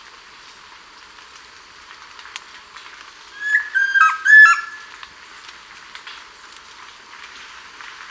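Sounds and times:
chestnut-crowned antpitta calling in Ecuador: 0:03.4 - 0:04.9.

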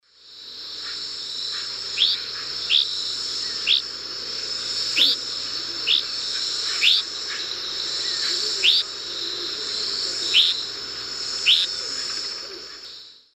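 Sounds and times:
Tachycineta albiventer calling from perch in South American eastern lowlands: 0:01.5 - 0:03.9, 0:04.8 - 0:10.7, 0:11.3 - 0:12.9.

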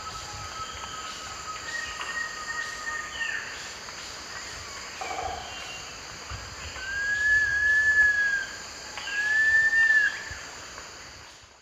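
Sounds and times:
long-billed woodcreeper song in the eastern lowlands of South America: 0:00.0 - 0:03.4, 0:06.7 - 0:10.4
steady background insect drone: 0:00.0 - 0:11.6.

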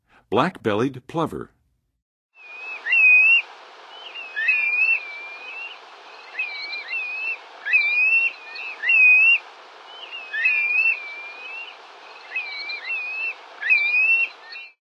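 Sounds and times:
Black-bellied Plover calling: 0:02.4 - 0:14.8.

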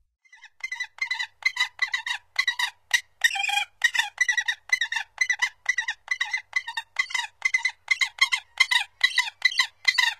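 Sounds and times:
gyrfalcon calling with rough broken cackles: 0:00.7 - 0:10.1.

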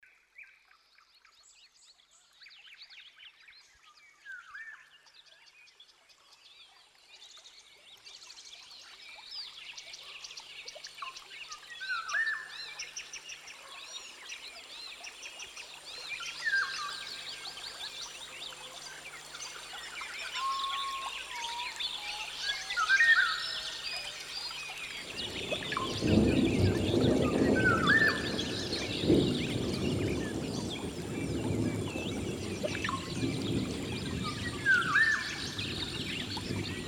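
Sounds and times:
rainfall in a rainforest: 0:08.2 - 0:36.8.

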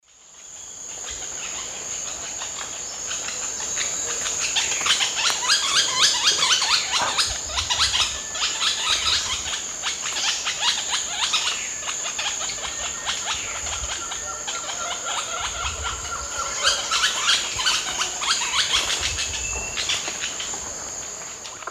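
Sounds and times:
pair of Automolus infuscatus calling in South American eastern lowlands: 0:01.0 - 0:20.7.

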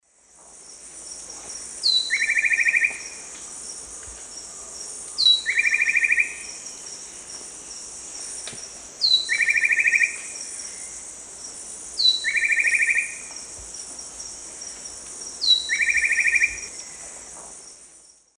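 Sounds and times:
Henicorhina leucosticta song in the Eastern Lowlands of South America: 0:01.8 - 0:03.2, 0:05.2 - 0:06.6, 0:09.0 - 0:11.0, 0:12.0 - 0:13.3, 0:15.4 - 0:17.1.

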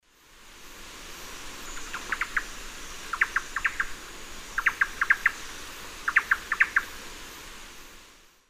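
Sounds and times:
Campylorhynchus turdinus singing in eastern lowlands of South America: 0:01.6 - 0:06.9.

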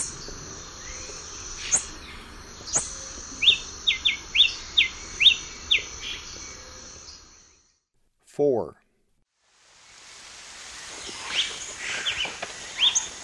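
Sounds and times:
masked crimson tanager song in the eastern lowlands of South America: 0:00.0 - 0:07.8, 0:10.7 - 0:13.2
speech: 0:08.4 - 0:08.8.

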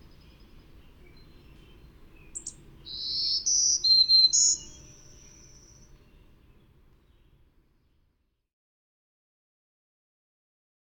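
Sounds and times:
Black-throated green warbler song in North America: 0:00.0 - 0:08.1.

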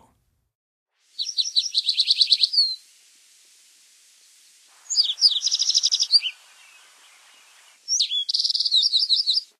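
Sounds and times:
Yellow-eyed Junco singing: 0:01.2 - 0:02.9, 0:04.2 - 0:09.5.

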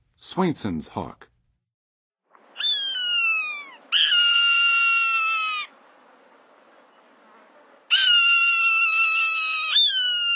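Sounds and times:
Swainson's hawk calling in the Western USA: 0:02.5 - 0:05.8, 0:07.9 - 0:10.3.

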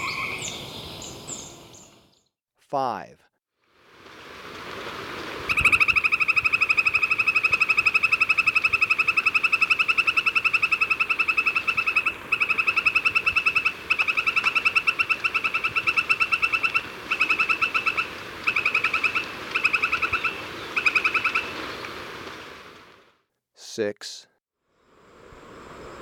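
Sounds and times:
speech: 0:02.7 - 0:03.3
Northern White-crowned Tapaculo calling in Ecuador: 0:05.5 - 0:21.6.

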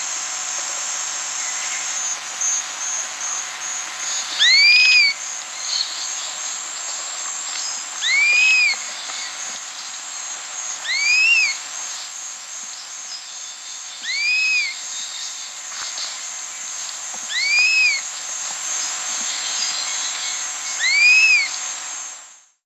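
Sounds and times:
Chestnut-capped Puffbird Bucco macrodactylus calling in Peru: 0:04.4 - 0:05.2, 0:08.0 - 0:09.4, 0:10.8 - 0:11.6, 0:14.0 - 0:14.8, 0:17.3 - 0:18.0, 0:20.8 - 0:21.6.

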